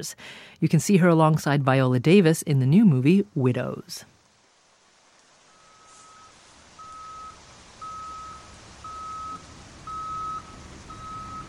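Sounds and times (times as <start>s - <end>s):
speech: 0.0s - 4.1s
tow truck reversing alarm beeping in the rain: 5.5s - 11.4s
tow truck engine low rumble: 5.7s - 11.4s.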